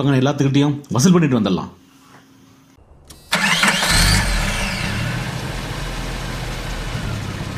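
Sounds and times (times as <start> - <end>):
speech: 0.0 - 1.8
car engine starting: 2.8 - 7.5.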